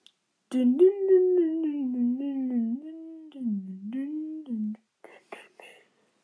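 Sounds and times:
person humming a music box tune: 0.5 - 5.8
soft breathy noises: 5.0 - 6.2.

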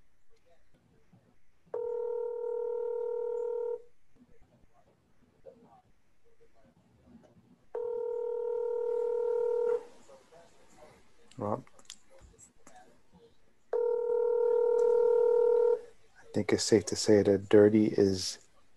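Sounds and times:
quiet murmur: 0.0 - 18.7
telephone ringback tones of an unanswered call: 1.8 - 3.8, 7.8 - 9.8, 13.8 - 15.8
speech: 16.5 - 18.4.

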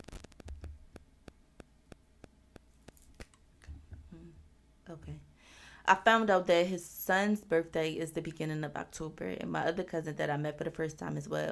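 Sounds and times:
rapid regular sharp static clicks: 0.0 - 3.5
low electrical hum of static on a recording: 0.0 - 11.5
speech: 4.9 - 11.5.

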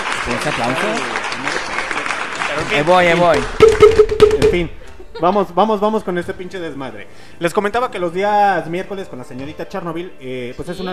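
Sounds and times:
dense steady applause: 0.0 - 3.6
speech: 0.3 - 1.7, 2.5 - 10.9.

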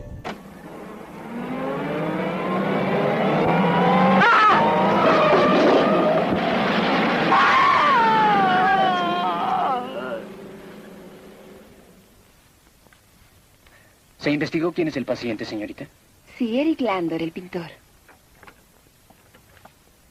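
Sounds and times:
car tires screeching: 0.3 - 12.1
car engine roaring: 0.3 - 12.3
person screaming while being run down by a car: 4.2 - 4.9, 7.2 - 10.3
speech: 14.3 - 17.8.

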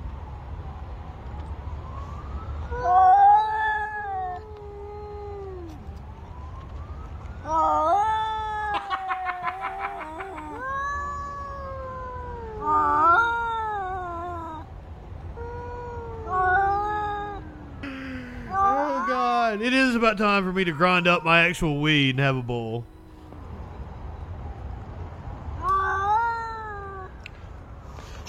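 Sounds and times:
two cats yowling at each other: 2.7 - 5.8, 7.4 - 14.7, 15.4 - 17.8, 18.4 - 22.6, 25.6 - 27.2
speech: 19.6 - 22.9.

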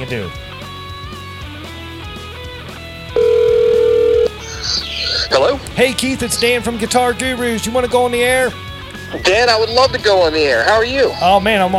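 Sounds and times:
speech: 0.0 - 0.5, 5.3 - 11.7
electronic telephone ringback tone on an outgoing call: 3.2 - 4.4.

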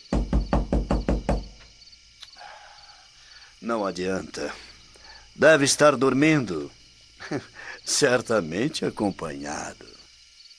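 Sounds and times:
firm knocks on the wooden door of a house at night: 0.0 - 1.7
speech: 3.6 - 4.7, 5.4 - 10.0
laughter: 7.2 - 8.1.

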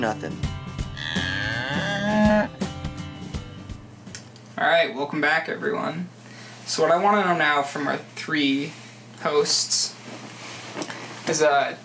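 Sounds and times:
speech: 0.0 - 0.6, 4.6 - 10.2, 11.3 - 11.8
cow mooing: 1.0 - 2.6.

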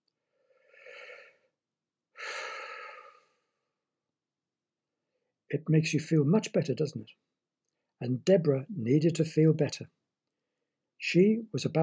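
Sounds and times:
person taking a deep breath: 0.2 - 1.5, 2.2 - 3.6
speech: 5.5 - 7.3, 8.0 - 10.0, 11.0 - 11.8.

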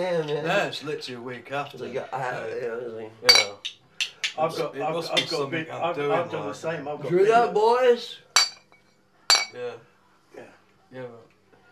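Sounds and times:
speech: 0.0 - 8.2, 9.5 - 11.2
glasses clinking in a toast in a pub: 3.3 - 3.7, 8.4 - 9.6.

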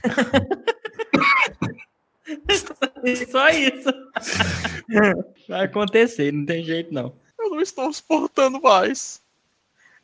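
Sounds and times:
speech: 0.0 - 0.6, 3.4 - 9.2
laughter: 0.0 - 2.7, 3.5 - 5.1
person coughing: 1.0 - 1.8, 4.2 - 4.9.

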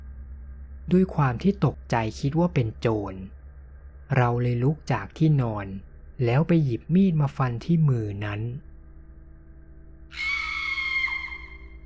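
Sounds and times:
low hum: 0.0 - 11.8
speech: 0.9 - 3.4, 4.1 - 8.7, 10.1 - 10.3
woman screaming: 10.1 - 11.8.

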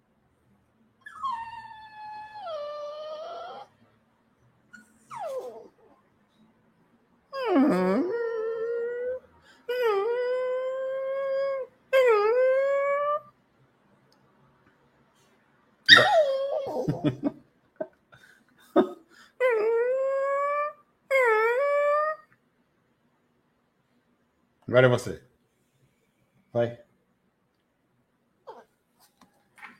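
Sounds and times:
small dog held by a person whimpering and crying with high whines and yelps: 1.0 - 3.8, 4.7 - 6.0, 7.3 - 13.3, 15.9 - 17.1, 19.4 - 22.3, 28.5 - 28.7
speech: 24.8 - 25.3.

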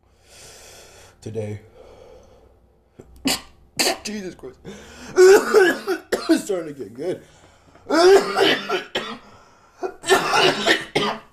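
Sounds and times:
speech: 1.2 - 1.7, 4.0 - 8.9
heavy raspy coughing fit: 3.2 - 6.5, 7.9 - 11.3.

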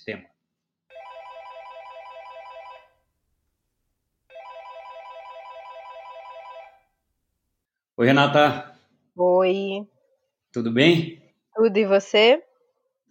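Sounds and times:
speech: 0.0 - 0.4, 8.0 - 9.9, 10.5 - 12.5
ringback tone of an outgoing telephone call: 0.9 - 3.0, 4.3 - 6.9.

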